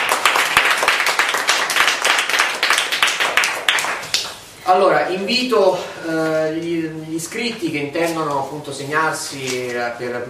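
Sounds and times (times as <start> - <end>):
room full of people applauding: 0.0 - 4.4
speech: 4.7 - 10.2.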